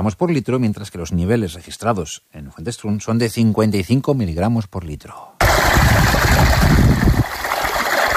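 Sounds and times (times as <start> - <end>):
speech: 0.0 - 7.1
water pouring into a container: 5.4 - 8.1.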